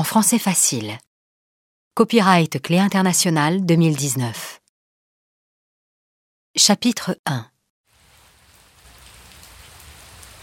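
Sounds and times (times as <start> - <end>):
speech: 0.0 - 1.1, 2.0 - 4.6, 6.6 - 7.5
steady rain falling on a surface: 7.9 - 10.4.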